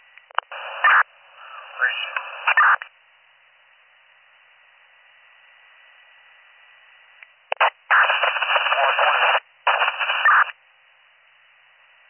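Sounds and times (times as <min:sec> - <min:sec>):
harsh radio static bursts: 0:00.4 - 0:02.9, 0:07.5 - 0:10.5.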